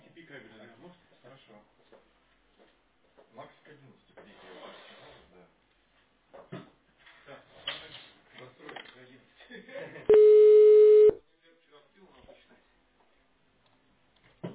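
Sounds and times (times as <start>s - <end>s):
telephone ringback tone while connecting a callback: 10.1s - 11.2s.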